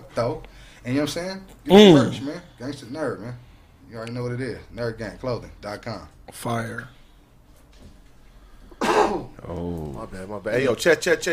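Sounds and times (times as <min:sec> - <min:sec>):
speech: 0:00.2 - 0:07.0, 0:09.1 - 0:11.3
harsh throat clearing: 0:01.7 - 0:02.3, 0:08.8 - 0:09.4.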